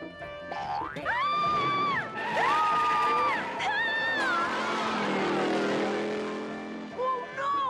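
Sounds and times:
springy boing-like sound effects: 0.5 - 1.2
cartoon car engine revving and racing off: 1.0 - 7.6.

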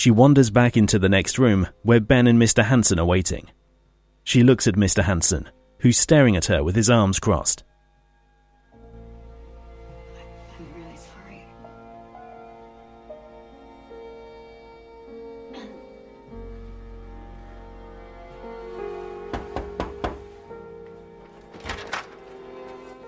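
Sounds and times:
speech: 0.0 - 3.6, 4.3 - 7.7
steady hum: 0.0 - 23.0
door being opened with clicks and clunks: 20.9 - 23.0.

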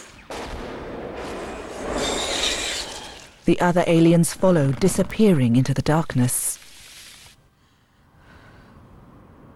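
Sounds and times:
creature's cannon blasts: 0.0 - 6.2
speech: 3.5 - 6.6.

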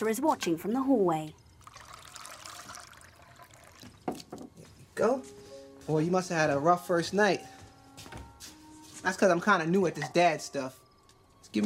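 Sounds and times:
speech: 0.0 - 1.4, 5.0 - 8.1, 9.0 - 10.8
milk pouring from a bottle into a glass: 1.4 - 4.6.

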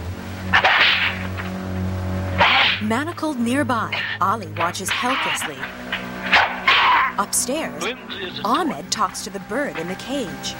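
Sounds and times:
low steady hum: 0.0 - 10.5
whip lashing a man's bare chest in a palace dungeon: 0.5 - 1.5, 2.4 - 2.8, 4.9 - 7.2
speech: 2.9 - 6.0, 7.2 - 10.5.

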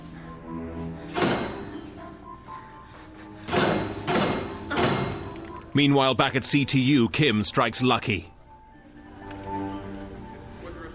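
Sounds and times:
folding chair hammering metal pipes: 1.1 - 2.0, 3.5 - 5.4
speech: 5.8 - 8.3.

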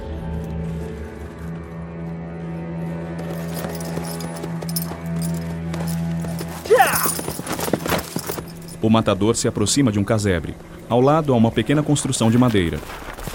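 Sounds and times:
sustained tonal background: 1.6 - 12.1
horse hooves clip-clopping as the horse walks in circles: 2.6 - 9.0
speech: 8.9 - 13.1.

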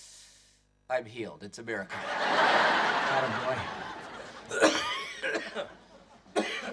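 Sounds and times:
speech: 0.9 - 3.8, 4.5 - 5.8
laughter: 1.9 - 6.7
man coughing harshly: 4.5 - 5.7, 6.3 - 6.7.

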